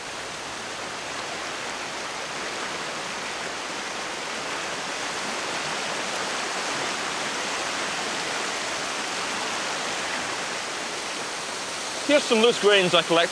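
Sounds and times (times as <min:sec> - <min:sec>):
water rushing in a fast-flowing moorland stream: 0:00.0 - 0:13.3
speech: 0:12.1 - 0:13.3.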